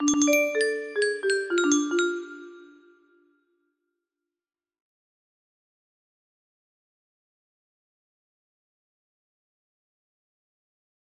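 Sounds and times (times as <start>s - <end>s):
generic music box melody: 0.0s - 3.1s.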